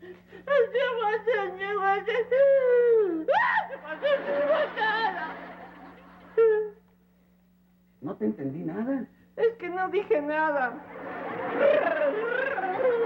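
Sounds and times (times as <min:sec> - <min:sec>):
boy wailing and sobbing: 0:00.0 - 0:05.3, 0:06.4 - 0:06.8, 0:11.6 - 0:13.0
laughter: 0:03.7 - 0:06.8, 0:10.8 - 0:13.0
speech: 0:08.2 - 0:09.2, 0:09.8 - 0:13.0.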